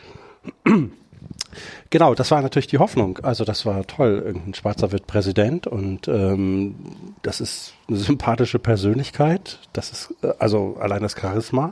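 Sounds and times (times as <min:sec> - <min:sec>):
throat clearing: 0:00.4 - 0:01.2
speech: 0:00.7 - 0:01.0, 0:01.9 - 0:11.7.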